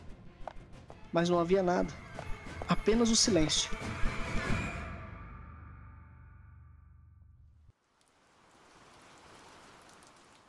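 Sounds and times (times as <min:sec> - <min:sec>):
speech: 0:01.1 - 0:02.0, 0:02.8 - 0:04.1
rain falling: 0:07.7 - 0:10.4.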